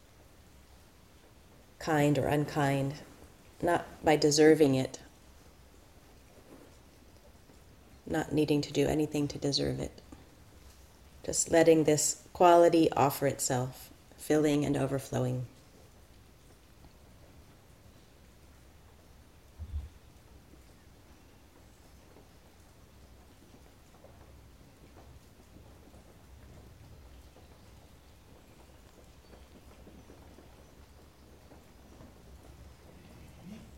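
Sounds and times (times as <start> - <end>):
rain falling: 0.0 - 33.7
speech: 1.8 - 5.0, 8.1 - 10.0, 11.2 - 15.5
low rumble: 19.6 - 20.0.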